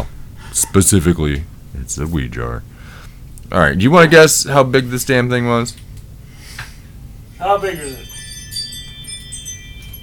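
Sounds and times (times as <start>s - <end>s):
speech: 0.0s - 2.9s, 3.5s - 5.9s, 7.4s - 8.1s
bright high-pitched musical chimes: 7.4s - 10.0s.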